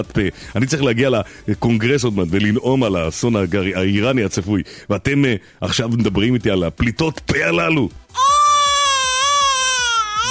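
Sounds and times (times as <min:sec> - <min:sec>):
speech: 0:00.0 - 0:08.3
baby crying: 0:08.1 - 0:10.2.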